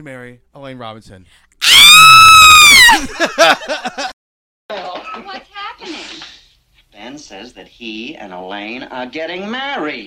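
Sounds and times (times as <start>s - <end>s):
speech: 0.0s - 1.6s, 2.9s - 4.1s, 7.0s - 10.0s
person letting out a high-pitched mock scream: 1.6s - 3.1s
laughter: 2.9s - 4.2s.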